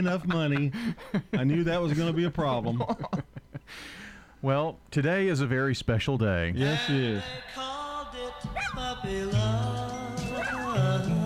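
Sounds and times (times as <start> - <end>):
speech: 0.0 - 7.6, 8.4 - 9.6
puppy barking: 8.6 - 8.8
puppy yipping and whimpering: 10.3 - 10.9.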